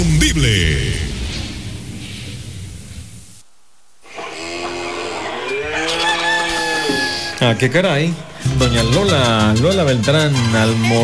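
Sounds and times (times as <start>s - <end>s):
speech: 0.2s - 1.1s, 7.4s - 11.0s
clucking farmyard noise: 4.0s - 8.5s
scratchy farmyard noise: 4.0s - 8.5s
rooster crowing: 4.1s - 7.9s.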